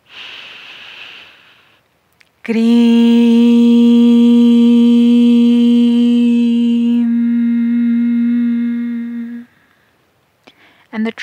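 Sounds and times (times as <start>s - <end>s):
deep inhalation during a spiritual breathing exercise: 0.0s - 1.8s
speech: 2.4s - 3.2s, 11.0s - 11.2s
loud sustained steady harmonic tone: 2.5s - 9.5s.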